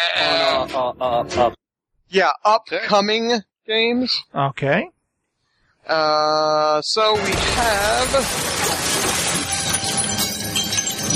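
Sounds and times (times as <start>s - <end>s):
speech: 0.0s - 5.0s, 5.8s - 9.2s
glass shards and debris clattering: 7.1s - 11.1s
glass shattering with tinkling shards: 7.1s - 11.1s.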